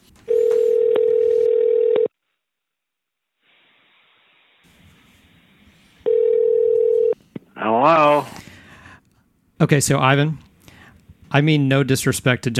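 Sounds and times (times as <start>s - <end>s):
telephone ringback tone: 0.3s - 2.1s, 6.1s - 7.2s
speech: 9.6s - 10.5s, 11.3s - 12.5s.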